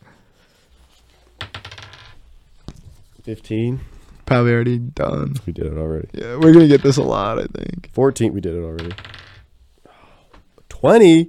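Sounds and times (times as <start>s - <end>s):
die rattling and clattering across a hard surface: 1.4s - 2.2s, 6.3s - 7.3s, 8.8s - 9.5s
speech: 3.2s - 9.1s, 10.8s - 11.2s.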